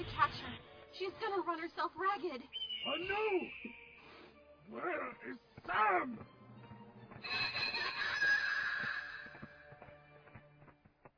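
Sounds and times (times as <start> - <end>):
speech: 1.0 - 3.8, 4.7 - 6.4, 7.2 - 8.0
shrill warbling witch's cackle sound effect: 7.2 - 9.4.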